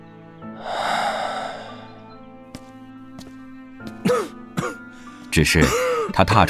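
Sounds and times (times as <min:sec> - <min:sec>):
long breathy exhale: 0:00.6 - 0:02.1
suppressed hoarse coughing: 0:04.0 - 0:04.8, 0:05.5 - 0:06.2
speech: 0:05.3 - 0:06.4.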